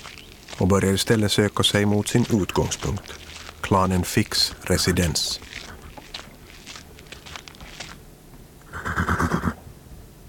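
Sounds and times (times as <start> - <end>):
speech: 0.6 - 5.5
horse neighing: 8.7 - 9.6.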